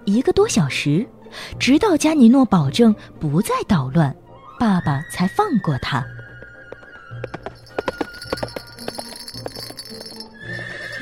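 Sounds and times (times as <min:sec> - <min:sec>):
speech: 0:00.1 - 0:06.2
hooves of a horse-drawn carriage clopping: 0:05.7 - 0:10.9
horse whinnying: 0:10.4 - 0:10.9.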